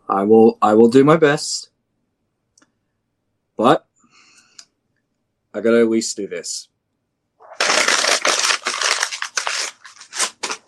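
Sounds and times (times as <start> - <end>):
speech: 0.1 - 1.7, 3.6 - 3.9, 5.6 - 6.7
paper tearing: 7.4 - 10.6.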